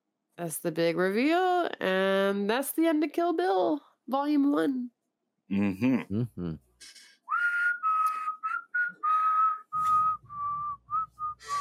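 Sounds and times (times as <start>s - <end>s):
speech: 0.4s - 7.0s
person whistling a melody: 7.3s - 11.5s.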